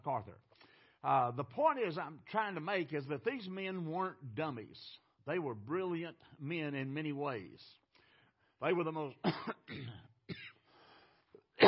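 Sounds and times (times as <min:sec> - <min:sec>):
speech: 0:01.0 - 0:07.8, 0:08.6 - 0:10.4
throat clearing: 0:09.2 - 0:10.6
person with a cold coughing: 0:09.2 - 0:10.7.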